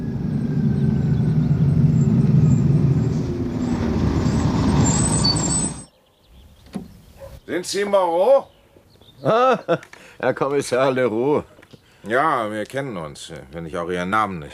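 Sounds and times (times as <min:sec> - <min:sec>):
bus engine rumble at a terminal stop: 0:00.0 - 0:05.9
bus air brakes squealing: 0:01.8 - 0:05.9
speech: 0:07.5 - 0:08.5, 0:09.2 - 0:14.5.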